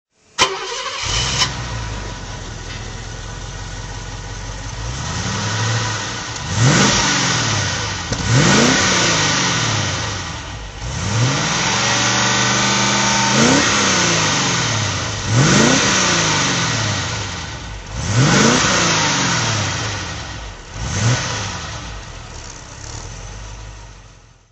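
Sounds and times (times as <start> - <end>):
Mercedes 280SE 3.5 V8 engine throttle: 0.3 - 24.5.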